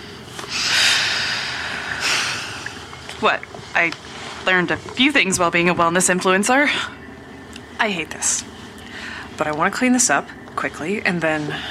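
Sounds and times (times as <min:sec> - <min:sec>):
slow deep calming breaths: 0:00.0 - 0:02.9, 0:08.8 - 0:09.4
speech: 0:03.2 - 0:07.0, 0:07.8 - 0:08.6, 0:09.4 - 0:11.6.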